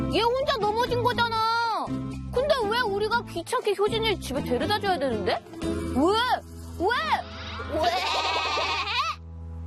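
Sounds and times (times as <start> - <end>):
speech: 0.1 - 2.0, 3.0 - 8.7
person imitating goat bleating while whining: 7.7 - 9.2.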